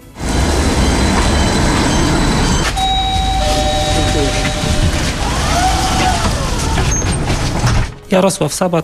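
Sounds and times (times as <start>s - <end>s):
tram rumbling along its rails: 0.0s - 8.2s
high metallic tram wheel squeals: 0.6s - 7.6s
ringing tone: 0.8s - 5.2s
speech: 8.1s - 8.8s.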